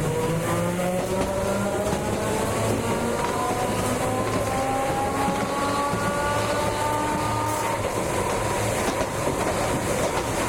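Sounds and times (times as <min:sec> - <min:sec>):
streetcar moving slowly: 0:00.0 - 0:10.4.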